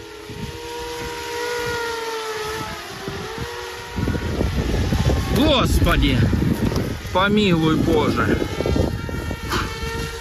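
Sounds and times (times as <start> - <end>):
drone motor whining overhead: 0.0 - 10.1
rumbling gusty noise: 0.0 - 10.1
speech: 5.4 - 8.6.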